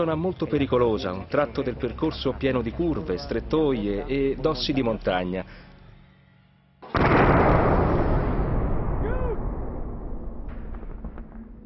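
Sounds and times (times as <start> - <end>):
speech: 0.0 - 5.7
loud explosion: 6.9 - 11.6.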